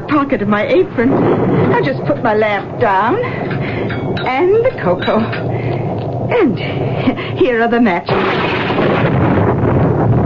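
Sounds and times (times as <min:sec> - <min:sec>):
heavy rolling thunder during a storm: 0:00.0 - 0:10.2
speech: 0:00.1 - 0:03.6, 0:04.2 - 0:05.6, 0:06.2 - 0:09.1.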